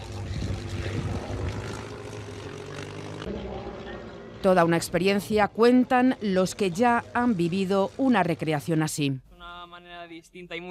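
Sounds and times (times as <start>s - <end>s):
vintage propeller aircraft flying overhead: 0.0s - 8.4s
speech: 4.4s - 10.6s.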